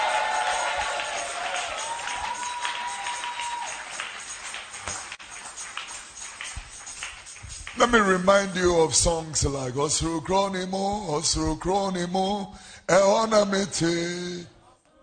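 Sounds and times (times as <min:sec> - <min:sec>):
audience shouts and whoops: 0:00.0 - 0:04.0
crowd applauding in a large room: 0:00.0 - 0:07.9
speech: 0:07.8 - 0:14.6.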